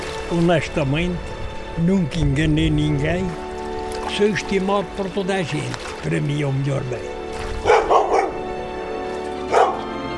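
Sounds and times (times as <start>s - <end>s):
speech: 0.3s - 3.4s, 4.1s - 7.2s
dog barking: 7.6s - 8.4s, 9.4s - 10.0s.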